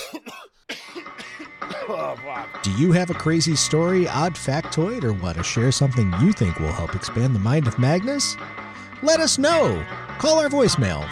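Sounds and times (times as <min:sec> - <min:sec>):
person coughing: 0:00.0 - 0:02.4
speech: 0:01.9 - 0:11.0.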